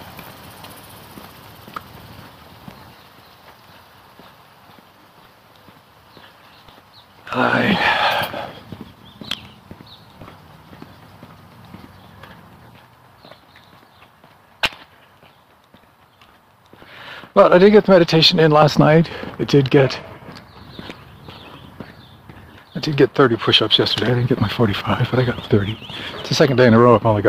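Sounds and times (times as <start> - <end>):
Rain Bird pop-up sprinklers ticking outdoors in the morning: 0.0 - 27.2
speech: 7.3 - 8.0, 17.4 - 20.1, 22.8 - 27.2.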